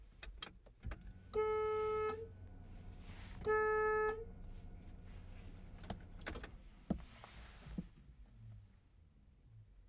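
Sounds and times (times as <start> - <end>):
1972 De Tomaso Pantera car horn heard from the interior: 1.2 - 2.4, 3.1 - 4.4.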